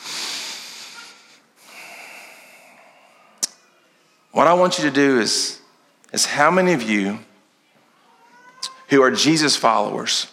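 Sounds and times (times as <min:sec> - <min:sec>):
deep breath during a church sermon: 0:00.0 - 0:03.4
speech: 0:04.4 - 0:07.3, 0:08.9 - 0:10.3.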